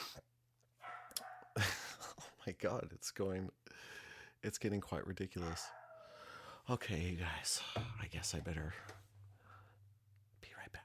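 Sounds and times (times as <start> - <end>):
dog barking: 0.8 - 1.6, 5.4 - 6.2
speech: 2.4 - 5.8, 6.7 - 9.0.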